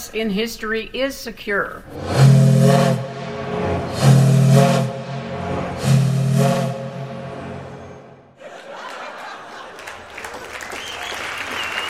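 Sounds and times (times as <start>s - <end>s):
speech: 0.1s - 3.0s
steam hissing: 2.0s - 5.2s
steamboat steam whistle blasts: 2.0s - 8.2s
laughter: 8.4s - 10.6s.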